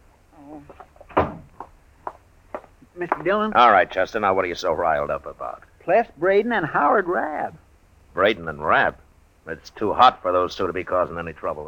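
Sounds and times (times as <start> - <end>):
small knocks: 0.7 - 3.4
door being shut: 1.1 - 1.5
speech: 3.0 - 7.6, 8.2 - 11.6.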